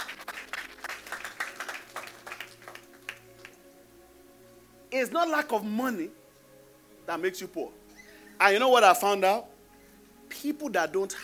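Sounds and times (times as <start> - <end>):
audience clapping: 0.0 - 3.6
speech: 4.9 - 6.2, 7.1 - 7.8, 8.4 - 9.5, 10.4 - 11.2.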